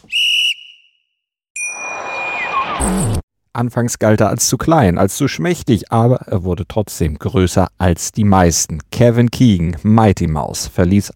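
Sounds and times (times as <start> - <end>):
shrill halftime whistle blast: 0.0 - 3.0
speech: 3.6 - 11.1.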